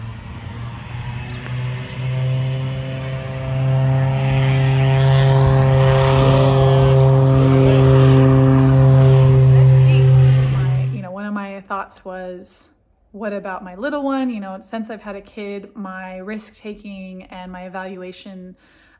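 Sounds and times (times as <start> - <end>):
skydiving plane engine droning with tonal whine: 0.0 - 11.1
speech: 13.3 - 18.8.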